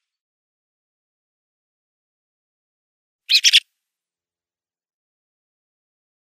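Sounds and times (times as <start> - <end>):
faint thin whistles from other birds: 3.3 - 3.6
song thrush clicking calls: 3.3 - 3.6.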